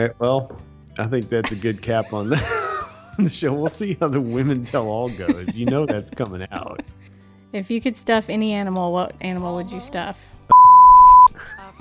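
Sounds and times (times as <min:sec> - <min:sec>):
speech: 0:00.0 - 0:02.6, 0:03.2 - 0:10.3
laughter: 0:01.4 - 0:07.1, 0:11.4 - 0:11.7
single-pitch censor bleep masking a word: 0:10.5 - 0:11.3.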